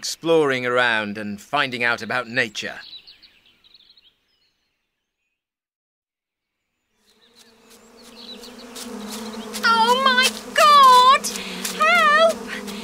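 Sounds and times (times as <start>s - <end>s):
speech: 0.0s - 3.0s
wasps buzzing: 7.0s - 12.8s.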